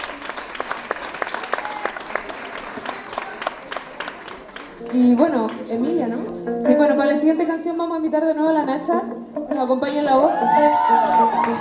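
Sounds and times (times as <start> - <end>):
audience applause at a live concert: 0.0 - 5.3, 10.5 - 11.5
speech: 4.9 - 9.0, 9.6 - 11.5.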